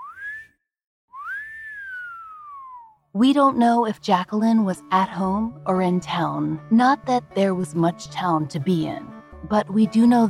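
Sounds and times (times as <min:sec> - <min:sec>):
long slow wolf whistle: 0:00.0 - 0:03.0
speech: 0:03.1 - 0:10.2.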